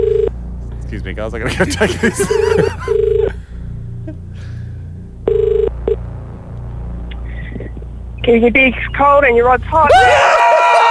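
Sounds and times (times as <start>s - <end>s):
mobile phone ringing with bright electronic tones: 0.0s - 0.3s, 2.6s - 3.3s, 5.3s - 6.0s
low steady hum: 0.0s - 10.2s
speech: 0.9s - 3.0s, 8.3s - 10.5s
laughter: 1.4s - 3.4s.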